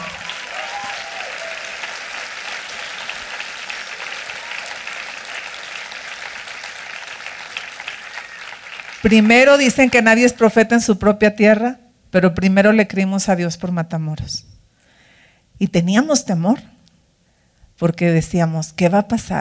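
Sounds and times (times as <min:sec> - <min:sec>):
large audience applauding: 0:00.0 - 0:10.5
speech: 0:09.0 - 0:14.5, 0:15.6 - 0:16.7, 0:17.8 - 0:19.4.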